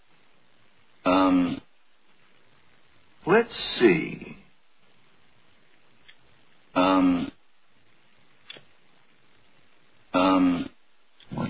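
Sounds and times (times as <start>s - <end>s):
person clearing throat: 1.1s - 1.6s, 6.8s - 7.4s, 10.2s - 10.8s
speech: 1.3s - 1.6s, 3.3s - 4.4s, 7.0s - 7.4s.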